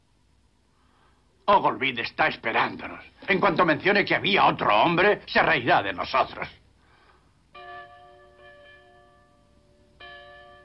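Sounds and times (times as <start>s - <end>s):
speech: 1.5s - 6.6s
bell ringing to resume a session: 7.5s - 10.6s.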